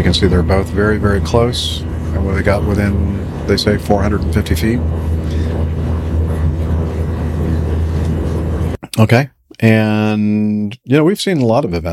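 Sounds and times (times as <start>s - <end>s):
speech: 0.0s - 5.4s, 9.0s - 11.9s
airplane engine drone: 0.0s - 9.2s.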